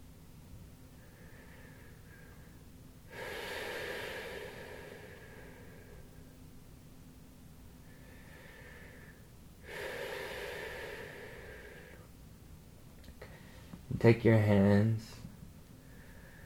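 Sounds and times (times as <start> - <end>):
faint steady low hum: 0.0 - 16.4
slow deep breathing in and out: 1.0 - 6.5, 7.8 - 12.1, 13.2 - 13.8, 15.8 - 16.4
speech: 14.0 - 15.2.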